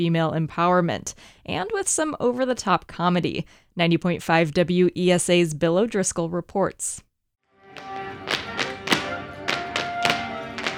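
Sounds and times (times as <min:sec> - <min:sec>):
speech: 0:00.0 - 0:07.1
dancers' feet thudding and tapping in a dance studio rehearsal: 0:07.8 - 0:10.7.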